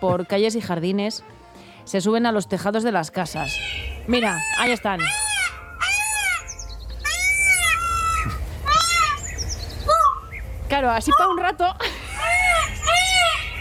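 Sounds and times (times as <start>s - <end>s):
speech: 0.0s - 5.3s, 10.8s - 11.9s
agitated peacock calling: 3.2s - 13.5s.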